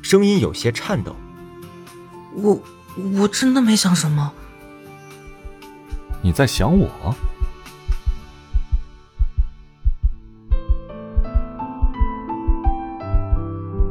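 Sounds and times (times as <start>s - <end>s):
speech: 0.0s - 1.2s, 2.4s - 4.5s, 6.2s - 7.3s
heartbeat sound effect in an audio drama: 5.3s - 6.2s, 7.2s - 13.9s.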